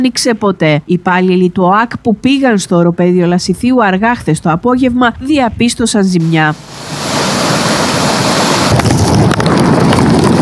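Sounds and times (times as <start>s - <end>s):
speech: 0.0s - 7.2s
floodwater rushing into a sinkhole: 6.5s - 10.4s.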